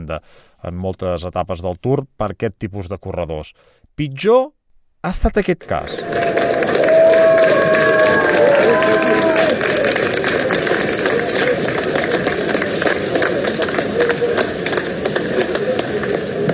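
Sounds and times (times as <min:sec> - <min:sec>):
speech: 0:00.1 - 0:06.7, 0:07.4 - 0:10.1
scattered applause from spectators and workers at a cycling stage finish: 0:05.6 - 0:16.5
dense outdoor crowd murmur at a cycling stage finish: 0:05.9 - 0:16.5.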